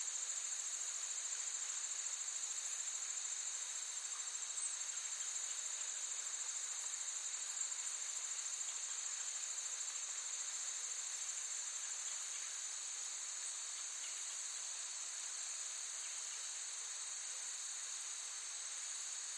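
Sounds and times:
forest insects high buzzing chorus: 0:00.0 - 0:19.3.

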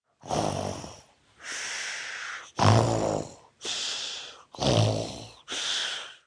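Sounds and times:
child snoring loudly with snorting and exhaling: 0:00.2 - 0:01.1, 0:02.5 - 0:03.8, 0:04.5 - 0:05.6.

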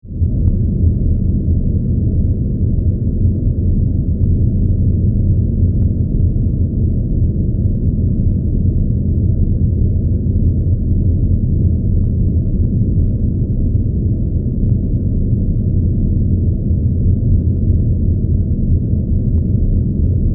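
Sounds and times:
spaceship interior drone: 0:00.0 - 0:20.3
spaceship interior rumble: 0:00.0 - 0:20.3.

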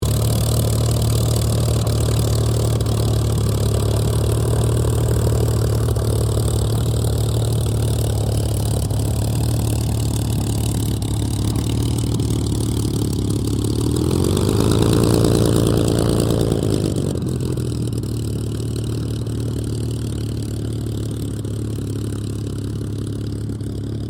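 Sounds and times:
Supermarine Spitfire Mk-XVI aircraft taxiing: 0:00.0 - 0:24.0.

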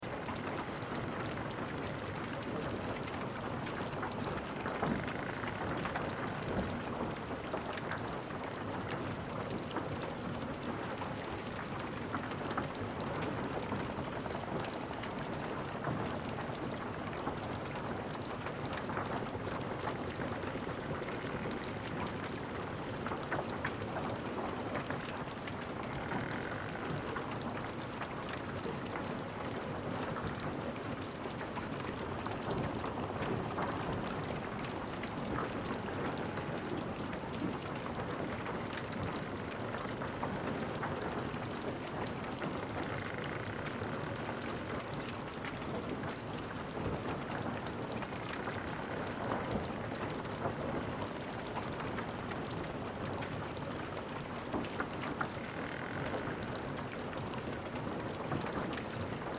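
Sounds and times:
water drips in fire-damaged interior: 0:00.1 - 0:59.3
fire-damaged interior wood structure stressing: 0:25.7 - 0:27.3.

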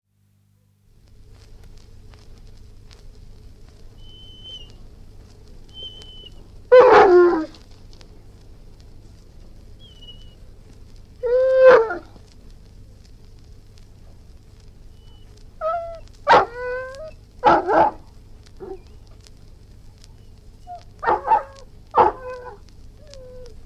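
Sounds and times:
Irish Wolfhound howling: 0:04.0 - 0:04.8, 0:05.7 - 0:07.6, 0:09.8 - 0:10.4, 0:11.2 - 0:12.2, 0:15.0 - 0:19.2, 0:20.2 - 0:23.6
Irish Wolfhound barking: 0:06.7 - 0:07.6, 0:11.2 - 0:12.1, 0:15.6 - 0:18.0, 0:18.6 - 0:18.9, 0:20.8 - 0:22.6.

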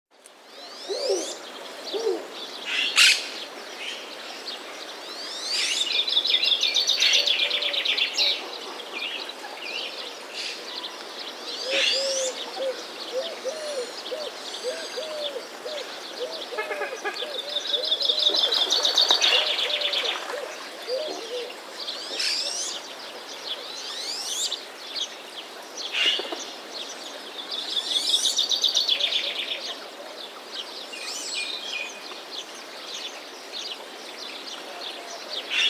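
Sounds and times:
birds: 0:00.5 - 0:35.6
water: 0:18.3 - 0:20.9.

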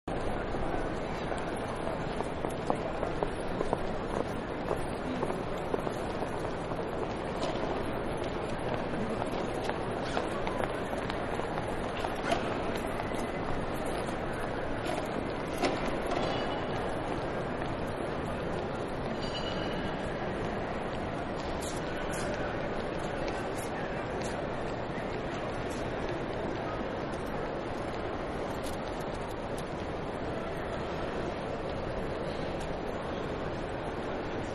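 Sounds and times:
train station ambience: 0:00.0 - 0:34.5.

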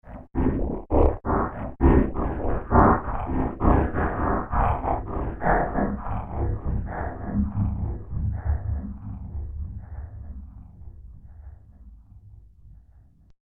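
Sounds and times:
menacing industrial machinery: 0:00.1 - 0:10.7.

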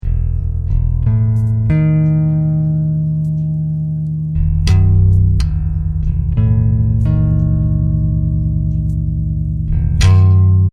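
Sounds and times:
hip hop bass guitar loop in E: 0:00.0 - 0:10.7.

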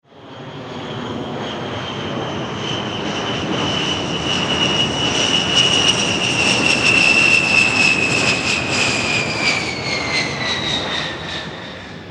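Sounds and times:
military A10 jet passing by: 0:00.1 - 0:12.0.

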